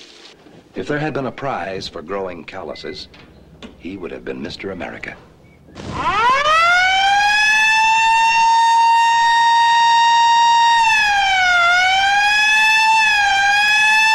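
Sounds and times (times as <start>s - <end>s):
speech: 0.8s - 6.2s
ambulance siren wailing: 5.8s - 14.1s.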